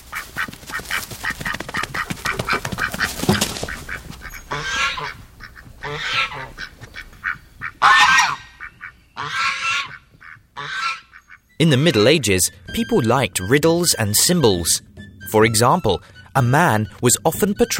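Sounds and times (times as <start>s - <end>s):
flock of geese honking: 0.0s - 17.7s
speech: 11.6s - 17.7s.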